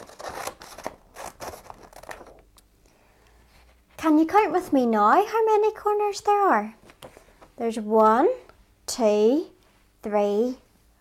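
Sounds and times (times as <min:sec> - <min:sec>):
scissors snipping through paper: 0:00.0 - 0:02.2
speech: 0:04.0 - 0:06.8, 0:07.6 - 0:10.6.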